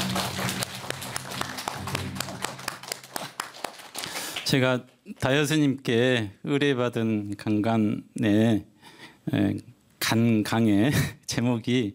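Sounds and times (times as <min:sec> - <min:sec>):
audience applause: 0:00.0 - 0:04.5
speech: 0:04.5 - 0:08.7, 0:09.3 - 0:11.9.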